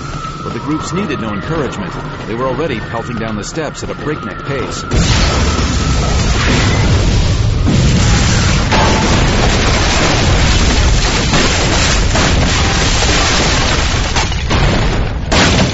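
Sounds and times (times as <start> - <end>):
crackling debris noise from a pipe bomb explosion: 0.0 - 15.7
speech: 0.5 - 6.6
pipe bomb explosion booming roar: 4.9 - 13.9.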